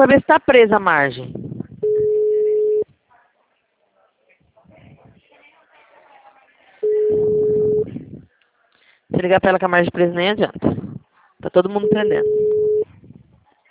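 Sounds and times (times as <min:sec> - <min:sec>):
speech: 0:00.0 - 0:01.4, 0:09.1 - 0:12.5
people talking quietly: 0:01.2 - 0:13.7
telephone busy signal: 0:01.8 - 0:02.9, 0:06.8 - 0:07.9, 0:11.8 - 0:12.9.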